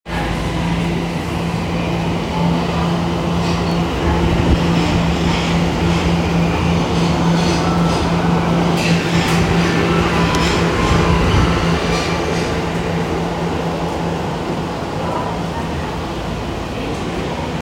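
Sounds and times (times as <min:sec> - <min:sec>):
train at Ginza Line Gaienmae station: 0:00.1 - 0:17.6.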